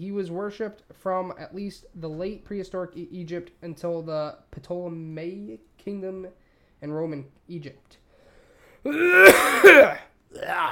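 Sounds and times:
speech: 0:00.0 - 0:08.0, 0:08.8 - 0:10.6
loud throat clearing from a person who is a little sick: 0:08.9 - 0:10.1
raspy coughing from a person who is a little sick: 0:08.9 - 0:10.1.

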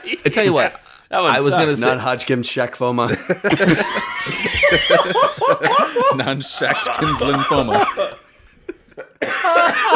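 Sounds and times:
speech: 0:00.0 - 0:08.2
laughter: 0:03.0 - 0:09.9
person in a hard coughing fit: 0:05.7 - 0:08.3, 0:09.2 - 0:09.9.

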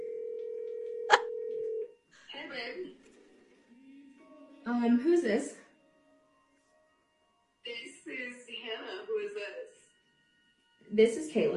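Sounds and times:
steady phone tone during a call being placed: 0:00.0 - 0:01.8
speech: 0:04.7 - 0:05.6, 0:11.0 - 0:11.5.

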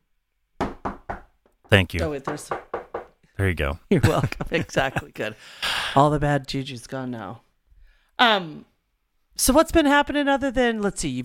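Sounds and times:
knuckles rapping on wood: 0:00.6 - 0:03.2
speech: 0:01.7 - 0:02.7, 0:03.4 - 0:07.4, 0:08.2 - 0:08.7, 0:09.4 - 0:11.2
laughter: 0:03.9 - 0:05.4.

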